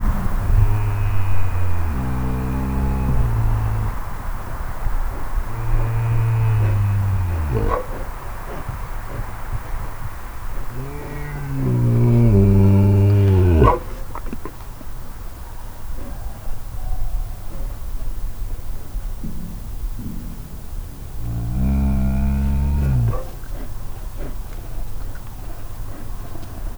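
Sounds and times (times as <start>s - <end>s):
unidentified Eurasian animal sounds at a zoo: 0.0s - 18.2s, 19.2s - 26.7s.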